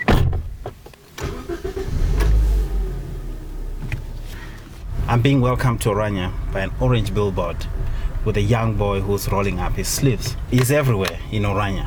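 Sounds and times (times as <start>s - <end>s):
car engine cranking, starting and idling: 0.0s - 11.8s
speech: 5.1s - 11.8s.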